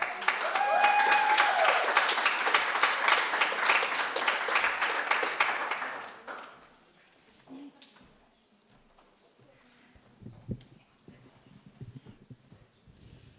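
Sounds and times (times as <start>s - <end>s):
audience applauding with dense clapping: 0.0s - 6.8s.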